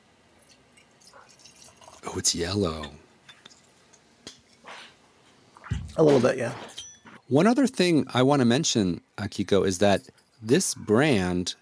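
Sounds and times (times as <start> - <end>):
sake being poured into a wine glass: 0.4 - 2.2
speech: 2.1 - 3.0, 6.0 - 6.7, 7.3 - 11.5.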